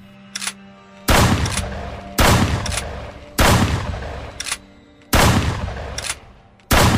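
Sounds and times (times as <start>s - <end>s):
loud gunshots fired at birds from a riverbank: 1.1s - 4.4s, 5.1s - 6.0s, 6.7s - 6.9s.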